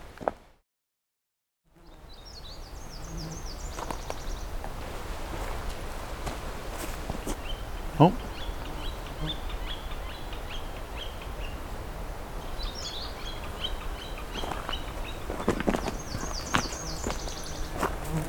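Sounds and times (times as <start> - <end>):
outdoor noise: 0.0 - 0.6, 1.7 - 18.2
other faint birds chirping: 1.8 - 4.6, 7.2 - 18.2
speech: 8.0 - 8.3.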